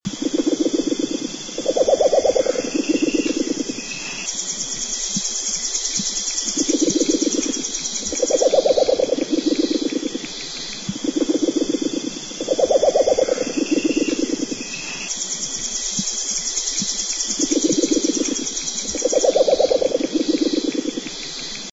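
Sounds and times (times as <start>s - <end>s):
tawny-browed owls calling in a duet: 0.2s - 4.2s, 6.6s - 10.3s, 11.0s - 15.0s, 17.4s - 21.0s.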